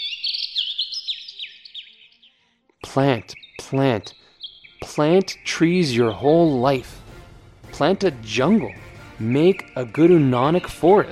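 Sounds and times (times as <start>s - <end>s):
birds chirping in a forest: 0.0s - 11.1s
speech: 2.9s - 4.2s, 5.0s - 7.0s, 7.8s - 11.1s.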